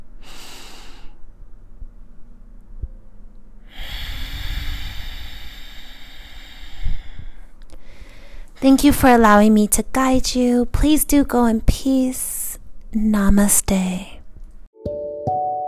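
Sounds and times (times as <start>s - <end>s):
deep breathing during a yoga lesson: 0.1s - 1.4s, 3.6s - 8.6s
speech: 8.6s - 12.3s, 12.9s - 14.2s.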